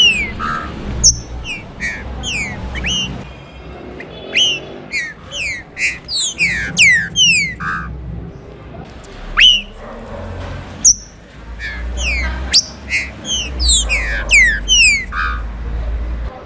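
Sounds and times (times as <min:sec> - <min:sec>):
Green-winged Saltator song: 0:00.0 - 0:03.2, 0:04.0 - 0:07.9, 0:09.4 - 0:09.8, 0:10.8 - 0:15.4.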